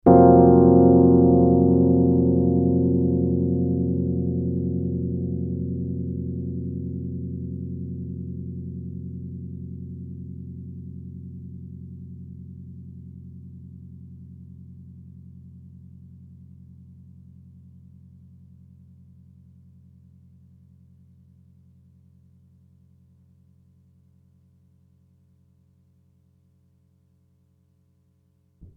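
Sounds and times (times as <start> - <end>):
Rhodes electric piano chord F sus b9: 0.0 - 9.2.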